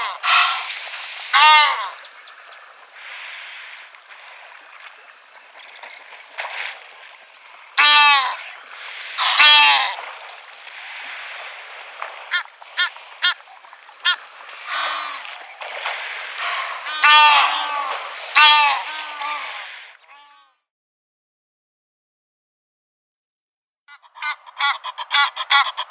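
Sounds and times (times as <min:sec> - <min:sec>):
Egyptian goose uttering hoarse honks and rasping notes: 0:00.0 - 0:02.1, 0:07.8 - 0:10.1, 0:12.3 - 0:13.4, 0:14.0 - 0:15.4, 0:16.4 - 0:20.5, 0:23.9 - 0:25.8.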